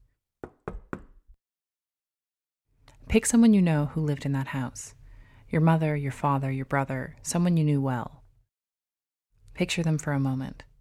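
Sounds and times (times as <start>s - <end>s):
knocking on a wooden door: 0.4s - 1.3s
speech: 3.1s - 8.2s, 9.6s - 10.7s.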